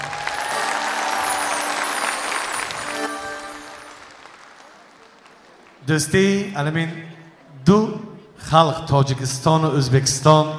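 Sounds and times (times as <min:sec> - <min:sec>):
audience applauding a guest singer at a duet performance: 0:00.0 - 0:05.9
speech: 0:05.9 - 0:07.1, 0:07.7 - 0:10.5.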